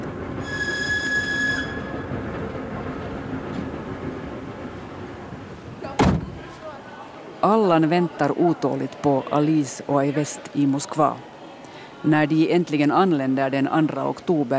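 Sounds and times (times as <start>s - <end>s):
train rumbling along rails: 0.0s - 7.4s
shrill train wheel squeal: 0.4s - 2.3s
speech: 7.5s - 11.3s, 12.0s - 14.5s.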